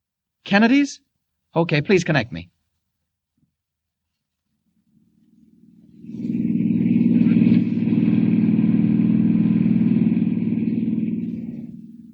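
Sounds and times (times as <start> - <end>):
speech: 0.5 - 2.5
car engine rumbling while driving along a dusty road: 5.2 - 12.1.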